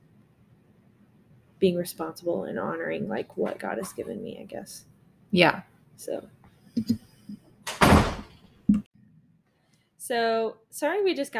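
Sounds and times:
speech: 0:01.6 - 0:07.0, 0:10.1 - 0:11.3
door thump: 0:07.7 - 0:08.3.

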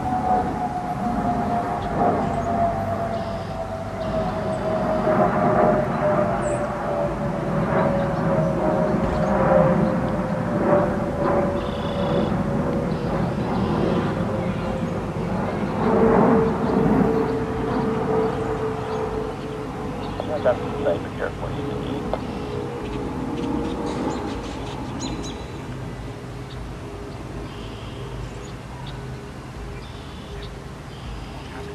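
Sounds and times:
high whining jet tone: 0:00.0 - 0:28.3
jet aircraft roaring overhead: 0:00.0 - 0:31.7.

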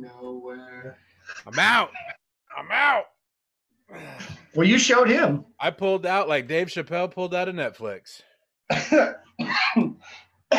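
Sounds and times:
speech: 0:00.9 - 0:02.0, 0:04.6 - 0:10.5
person coughing harshly: 0:08.7 - 0:10.5.

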